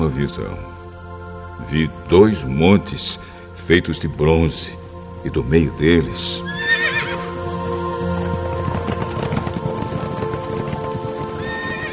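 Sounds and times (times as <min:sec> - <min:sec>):
speech: 0:00.0 - 0:00.8, 0:01.6 - 0:06.6
horse whinnying: 0:06.5 - 0:07.4, 0:11.4 - 0:11.9
horse hooves clip-clopping: 0:08.1 - 0:11.9.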